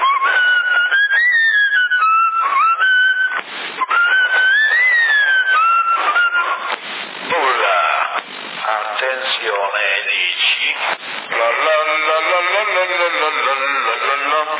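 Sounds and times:
man whistling a wavering sliding tune over CB radio: 0.0s - 6.7s
CB radio static noise bursts: 0.0s - 14.5s.

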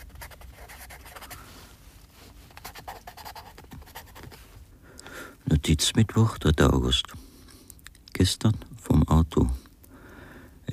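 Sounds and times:
handwriting strokes scratching across paper: 0.0s - 1.4s, 2.5s - 4.4s
speech: 5.5s - 7.2s, 8.2s - 9.6s.

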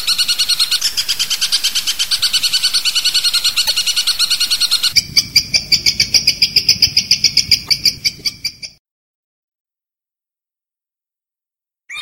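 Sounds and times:
long-tailed shrike song in tembakan variation style: 0.0s - 8.8s.

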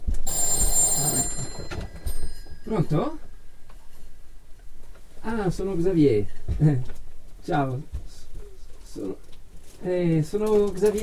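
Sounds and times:
telephone bell ringing in a home: 0.1s - 3.4s
speech: 2.7s - 3.3s, 5.3s - 8.0s, 9.0s - 11.0s.

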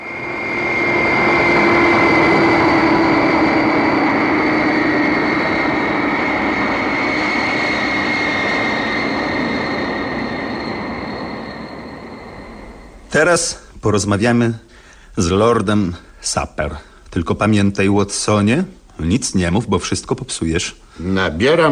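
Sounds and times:
airplane engine droning in flight: 0.0s - 13.7s
sustained whining hum of airplane: 0.0s - 16.2s
speech: 13.2s - 21.7s.

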